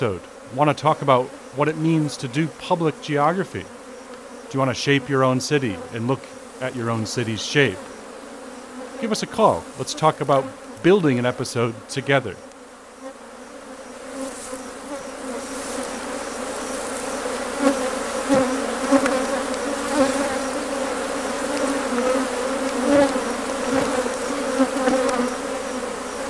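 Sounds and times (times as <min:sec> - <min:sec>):
speech: 0:00.0 - 0:03.8, 0:04.5 - 0:07.9, 0:09.0 - 0:12.5
swarm of bees buzzing: 0:00.0 - 0:26.2.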